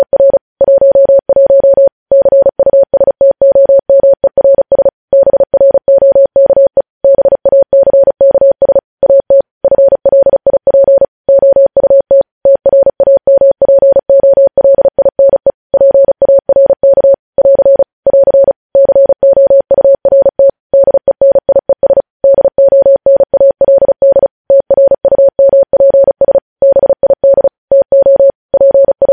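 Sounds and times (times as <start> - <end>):
mid-pitched Morse code beeps: 0.0 - 29.1.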